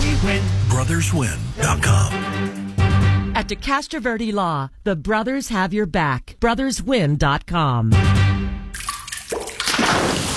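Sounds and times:
speech: 0.2s - 2.1s, 3.4s - 8.3s
water dripping from a plumbing leak: 8.7s - 10.3s.

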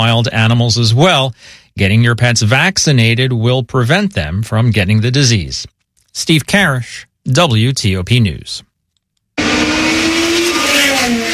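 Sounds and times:
speech: 0.0s - 8.7s
race cars roaring at a street Grand Prix in the nation's capital: 9.4s - 11.3s.

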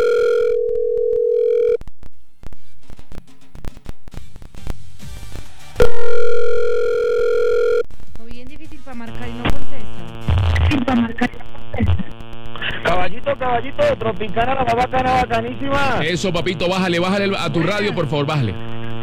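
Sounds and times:
mid-pitched beeps on a telephone line during an international call: 0.0s - 1.8s, 5.8s - 7.9s
crackling telephone line noise: 0.0s - 19.0s
speech: 13.5s - 18.6s.

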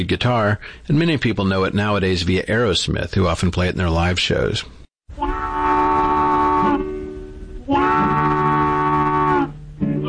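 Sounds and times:
speech: 0.0s - 4.8s
blues harmonica blowing long wailing chords: 5.2s - 10.0s.

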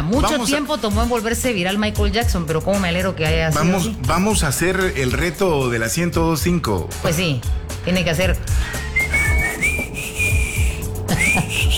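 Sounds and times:
speech: 0.1s - 8.8s
person whistling an off-key melody: 8.5s - 11.7s.

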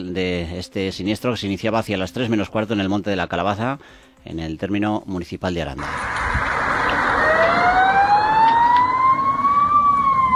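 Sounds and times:
speech: 0.0s - 6.3s
emergency vehicle siren wailing: 5.8s - 10.3s
road and engine rumble: 5.8s - 10.3s.

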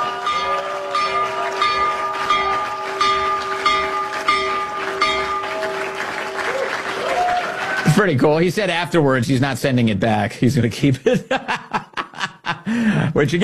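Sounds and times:
stock exchange opening bell ringing: 0.0s - 6.8s
crowd clapping and cheering: 0.0s - 8.8s
speech: 8.0s - 11.6s, 12.7s - 13.4s
laughter: 11.0s - 13.1s.

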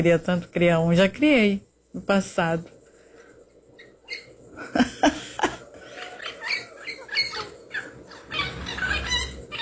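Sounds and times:
speech: 0.0s - 2.8s
faint outdoor noise: 0.0s - 9.6s
wild parrot giving shrill raspy calls outdoors: 3.8s - 4.4s, 5.8s - 9.6s.

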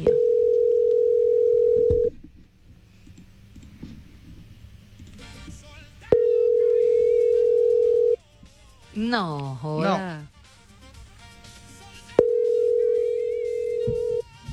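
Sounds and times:
telephone ringback tones on an unanswered call: 0.0s - 2.1s, 6.1s - 8.2s, 12.2s - 14.3s
speech: 9.1s - 10.2s.

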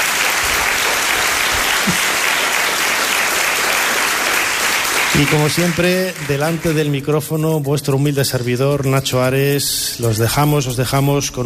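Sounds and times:
audience applause in Seville, Spain: 0.0s - 7.0s
speech: 5.2s - 11.4s.

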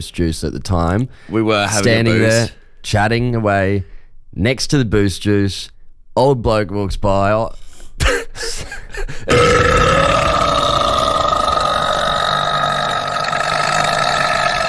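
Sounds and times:
speech: 0.0s - 10.3s
person imitating a long loud burp of an old man: 9.3s - 14.6s.

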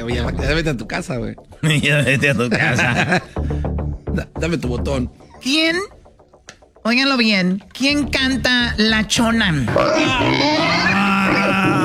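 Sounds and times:
speech: 0.0s - 3.6s, 4.2s - 6.0s, 6.8s - 10.8s
laughter: 2.2s - 3.4s
pig grunting sound effect: 9.7s - 11.8s.

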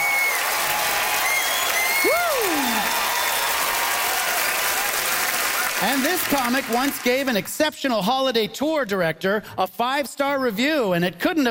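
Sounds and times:
loud whistle: 0.0s - 0.6s, 1.2s - 3.8s
large crowd applauding: 0.0s - 7.5s
speech: 5.8s - 11.4s.

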